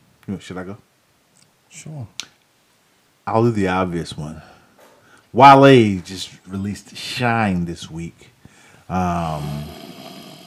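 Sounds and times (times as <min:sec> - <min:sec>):
quiet noise: 0:00.0 - 0:10.4
speech: 0:00.3 - 0:00.9, 0:01.7 - 0:02.3, 0:03.2 - 0:04.5, 0:05.3 - 0:08.3, 0:08.9 - 0:09.8
snore-like nasal snort from congested sinuses: 0:09.3 - 0:10.4.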